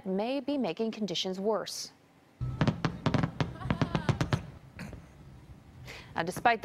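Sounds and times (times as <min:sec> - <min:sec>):
speech: 0:00.2 - 0:02.0, 0:06.2 - 0:06.6
fireworks exploding over waterfront with sharp cracking bangs: 0:02.4 - 0:05.2.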